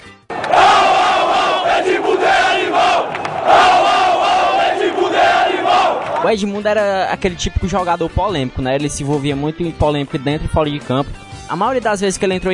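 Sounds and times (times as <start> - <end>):
football fans chanting in a big stadium: 0.3 - 6.3
speech: 6.2 - 12.5.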